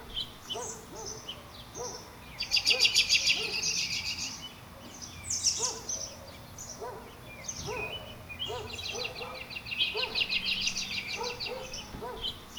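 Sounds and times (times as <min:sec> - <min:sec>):
birds chirping and trilling outdoors at a dog park: 0:00.0 - 0:12.5.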